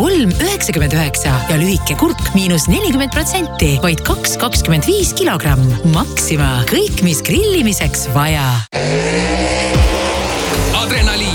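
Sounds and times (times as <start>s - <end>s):
speech: 0.2s - 9.6s, 10.8s - 11.3s
drag racing car engines roaring and revving: 8.8s - 11.3s
tire squeals of fast cars accelerating hard: 8.8s - 11.3s.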